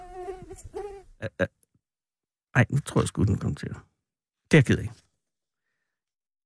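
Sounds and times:
mosquito whining close to the microphone: 0:00.0 - 0:01.1
speech: 0:00.6 - 0:01.6, 0:02.6 - 0:03.9, 0:04.5 - 0:05.1.

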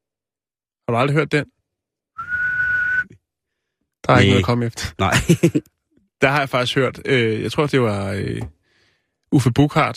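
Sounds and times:
speech: 0:00.9 - 0:01.6, 0:04.1 - 0:08.6, 0:09.3 - 0:09.9
person whistling one sustained note: 0:02.2 - 0:03.2
laughter: 0:05.1 - 0:05.6.

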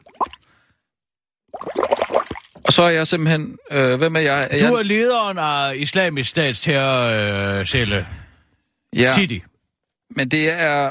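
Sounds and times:
bubbles blown through a straw into a glass of water: 0:00.0 - 0:00.5, 0:01.5 - 0:02.7
water plop: 0:00.0 - 0:00.5, 0:01.5 - 0:02.7
speech: 0:02.7 - 0:08.2, 0:08.9 - 0:09.5, 0:10.1 - 0:10.8.

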